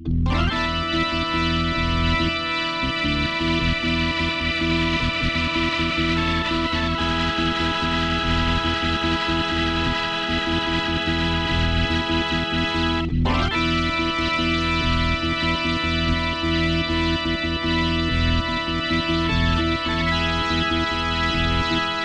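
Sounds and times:
organ preset on Yamaha TG500 synthesizer: 0.1s - 22.0s.

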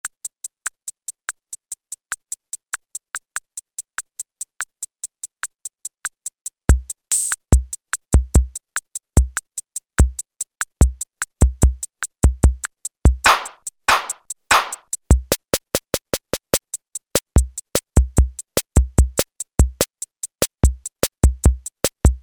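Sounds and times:
Alesis Z2 EuroDance drum kit: 7.5s - 8.6s, 10.8s - 16.6s, 17.2s - 22.2s.

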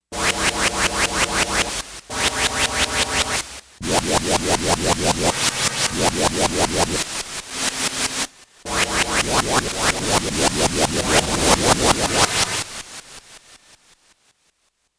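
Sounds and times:
Yamaha DX11 synthesizer factory preset voice: 0.1s - 7.0s, 8.7s - 12.8s.

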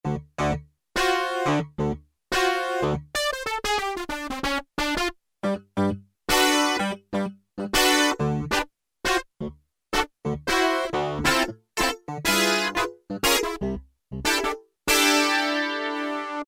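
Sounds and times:
Casio VZ-10M synthesizer playing a funk tune with an internal factory combi: 0.0s - 16.4s.

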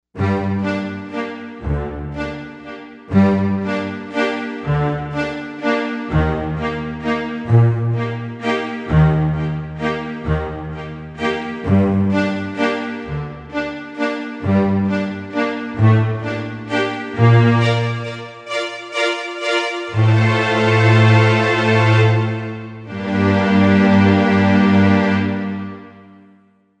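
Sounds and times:
string orchestra sound on a Korg M1Rex: 0.2s - 26.4s.

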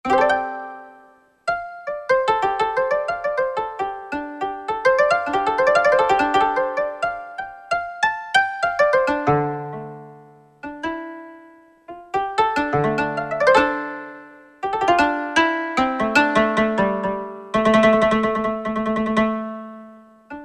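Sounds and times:
Yamaha TG77 synthesizer koto factory preset: 0.0s - 20.4s.

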